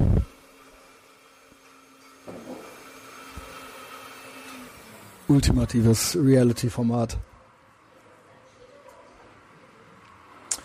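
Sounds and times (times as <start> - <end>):
blender whirring with faint grinding: 0.0 - 6.2
speech: 5.3 - 7.3.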